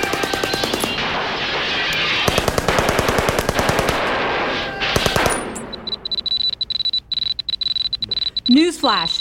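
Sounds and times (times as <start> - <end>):
gunfire from many guns in a shootout at a gun show: 0.0 - 5.6
speech: 8.5 - 9.1.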